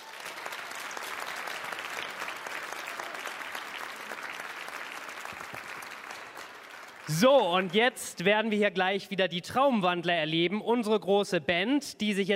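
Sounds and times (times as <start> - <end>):
sizable audience applause: 0.0 - 7.9
speech: 7.1 - 12.3.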